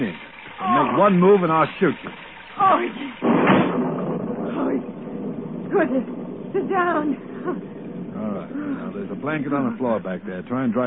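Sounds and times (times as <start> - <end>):
speech: 0.0 - 3.5, 5.7 - 10.8
rustling rain-like noise: 0.0 - 10.8
door shutting with a single solid thud: 3.2 - 4.2.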